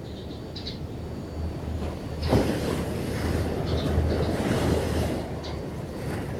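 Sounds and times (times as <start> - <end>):
wind noise: 0.0 - 6.3
sea waves rushing: 1.4 - 6.3.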